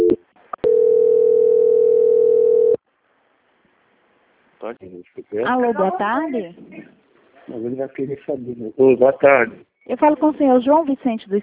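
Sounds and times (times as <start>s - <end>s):
telephone line tone while a call is being transferred: 0.0s - 2.8s
speech: 4.7s - 11.4s.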